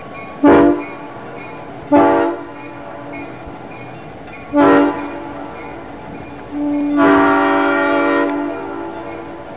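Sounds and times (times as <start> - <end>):
Nathan M5 air horn: 0.4 - 0.8, 1.9 - 2.5, 4.5 - 5.1, 6.5 - 8.9.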